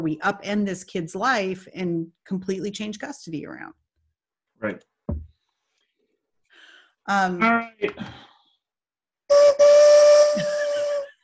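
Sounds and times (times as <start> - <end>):
speech: 0.0 - 3.8, 4.6 - 4.9, 7.1 - 8.3
loud steam train whistle: 9.3 - 10.4.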